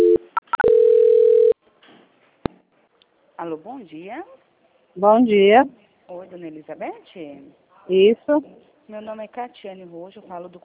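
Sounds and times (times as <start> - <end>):
telephone tones during a call transfer: 0.0 - 1.6
speech: 3.4 - 10.6.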